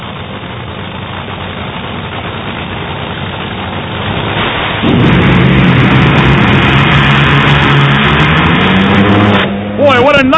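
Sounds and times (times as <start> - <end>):
drag racing car engine roaring at full throttle: 0.0 - 10.3
something blowing apart on the back of a drag racing car: 4.2 - 9.5.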